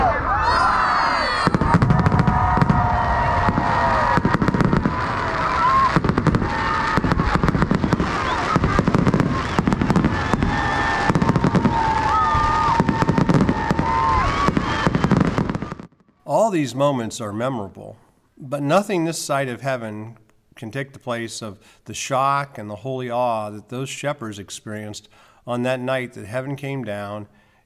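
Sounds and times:
low crowd murmur: 0:00.0 - 0:14.1
whistling firework streaks: 0:00.0 - 0:16.2
fireworks crackling and popping at a Christmas tree lighting: 0:01.3 - 0:16.6
speech: 0:16.5 - 0:27.6.

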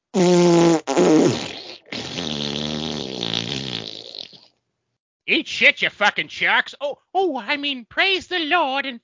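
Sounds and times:
person farting: 0:00.1 - 0:04.6
speech: 0:05.4 - 0:09.0.

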